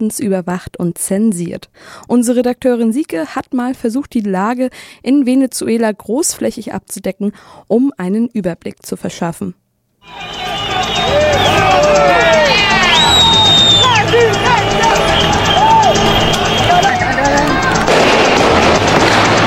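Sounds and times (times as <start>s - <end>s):
speech: 0.0s - 12.7s
high-pitched screams: 10.0s - 17.0s
many voices shouting and chanting protest calls: 10.0s - 19.4s
loud bang: 17.8s - 19.4s
sharp cracks of gunfire: 17.9s - 19.4s.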